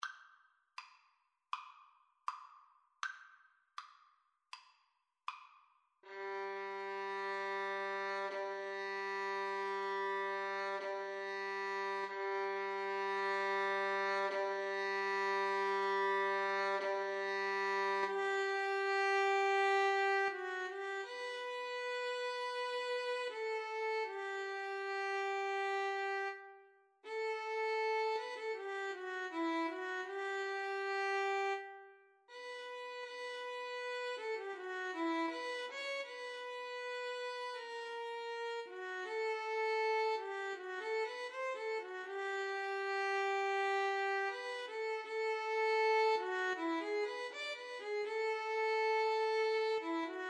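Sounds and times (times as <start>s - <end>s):
violin and viola duet: 6.0s - 50.2s.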